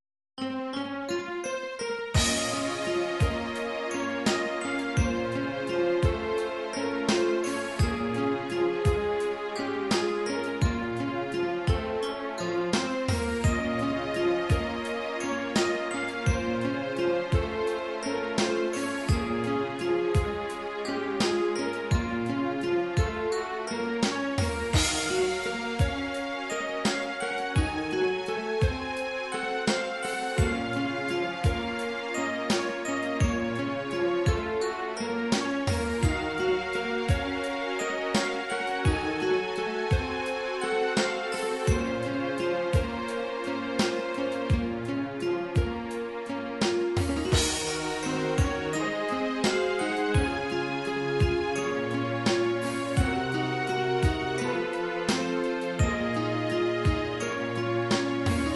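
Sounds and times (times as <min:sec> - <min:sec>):
sequenced synthesizer music on a Roland SC-8850: 0:00.5 - 0:58.5.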